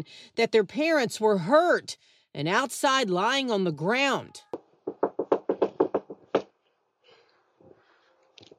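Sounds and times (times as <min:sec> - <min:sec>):
speech: 0:00.0 - 0:04.5
loud knocking on a door: 0:04.8 - 0:06.5.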